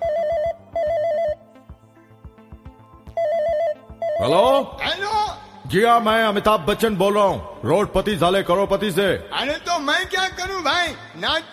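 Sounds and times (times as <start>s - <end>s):
phone ringing with a warbling electronic tone: 0.0s - 1.7s, 3.1s - 4.9s
soft rhythmic musical backing: 0.0s - 11.5s
speech: 4.2s - 11.5s.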